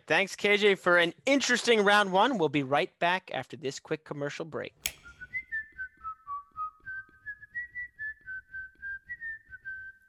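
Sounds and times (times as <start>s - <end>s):
speech: 0.1s - 4.9s
person whistling a simple melody: 5.4s - 10.0s.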